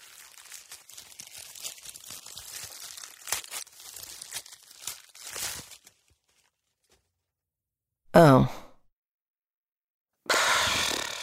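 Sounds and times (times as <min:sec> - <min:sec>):
gift wrapping paper tearing: 0:00.0 - 0:06.2, 0:10.3 - 0:11.2
gift wrapping paper rustling and crinkling: 0:00.0 - 0:07.2.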